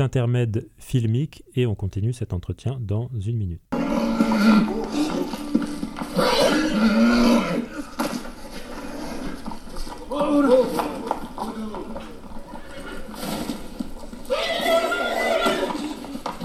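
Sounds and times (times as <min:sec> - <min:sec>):
speech: 0:00.0 - 0:05.2
horse hooves clopping: 0:03.7 - 0:16.4
horse neighing: 0:03.7 - 0:16.4.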